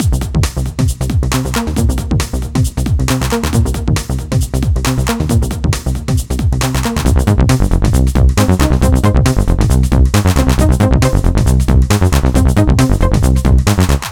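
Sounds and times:
jungle gaming music loop: 0.0s - 14.0s.

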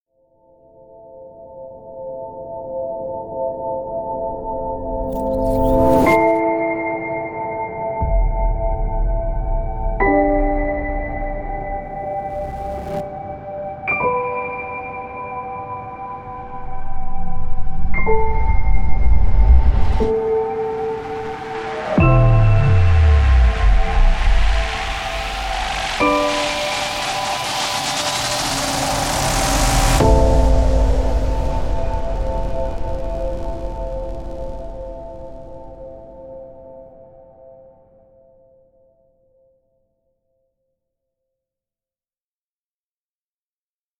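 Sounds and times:
cinematic piano trailer music: 0.6s - 38.5s
trailer sound effects: 4.9s - 6.4s, 11.0s - 13.2s, 17.5s - 36.6s
riser: 11.2s - 13.2s, 17.0s - 36.2s.

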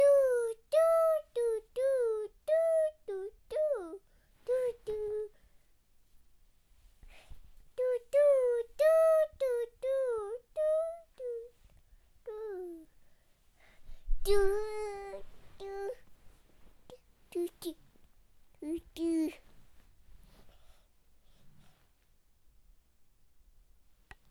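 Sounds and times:
baby singing: 0.0s - 5.4s, 7.8s - 11.6s, 12.2s - 12.9s, 14.2s - 16.1s, 16.9s - 17.8s, 18.6s - 19.4s.

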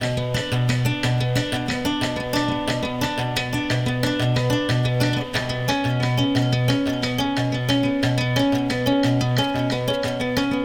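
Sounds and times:
nylon string guitar: 0.0s - 10.6s.

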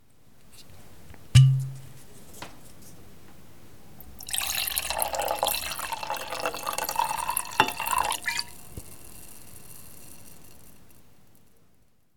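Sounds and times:
wine pouring: 4.2s - 9.0s.

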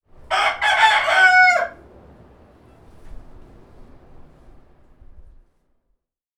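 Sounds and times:
rooster crowing: 0.3s - 1.8s.

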